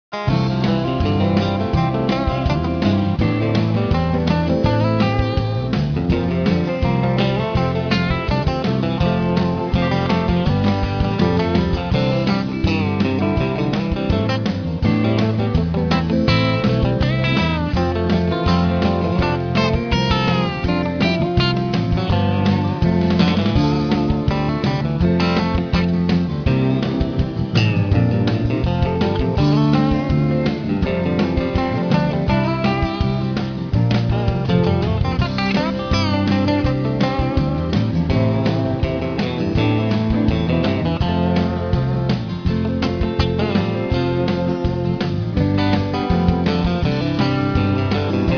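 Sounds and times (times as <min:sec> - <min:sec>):
on hold jazz music: 0:00.1 - 0:48.3.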